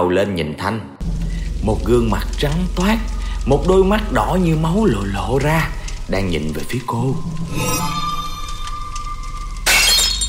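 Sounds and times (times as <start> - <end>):
speech: 0.0 - 8.0
sustained tonal background: 1.0 - 10.2
ceramic bowl dropped and shattering on the floor: 9.6 - 10.2.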